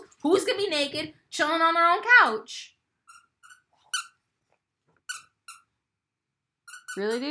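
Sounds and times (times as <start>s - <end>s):
speech: 0.2s - 2.8s, 7.0s - 7.2s
dog squeaking a squeaky toy: 3.1s - 4.2s, 5.1s - 5.7s, 6.7s - 7.0s.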